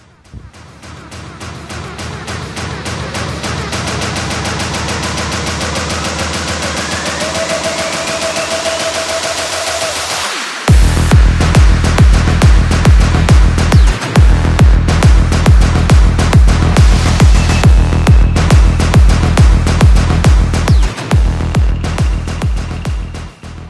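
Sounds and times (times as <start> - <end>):
pounding steady kick drums in electronic dance music: 0.0 - 1.1, 10.7 - 23.4
driving synths in electronic dance music: 5.4 - 23.6.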